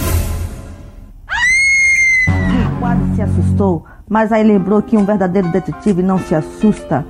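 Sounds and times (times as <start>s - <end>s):
loud shrill terrifying scream: 1.3s - 2.7s
speech: 3.2s - 7.0s.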